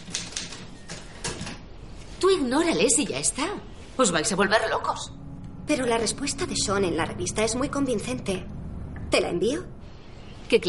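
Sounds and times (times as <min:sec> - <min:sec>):
rapid typewriter typing inside a wooden house in the countryside: 0:00.0 - 0:01.6
speech: 0:02.3 - 0:09.8, 0:10.5 - 0:10.6.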